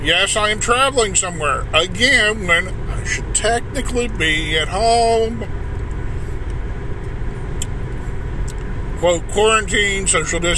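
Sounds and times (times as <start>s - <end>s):
speech: 0.0s - 5.6s, 9.0s - 10.5s
car cabin rumble with road and engine noise while driving: 0.0s - 10.5s.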